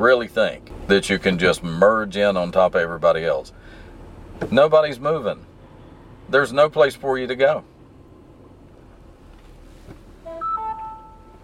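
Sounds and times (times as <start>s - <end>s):
speech: 0.0s - 3.8s, 4.4s - 5.5s, 6.3s - 7.7s
low constant hum: 0.0s - 11.4s
mobile phone beeping inside a car stuck in traffic: 10.2s - 11.4s.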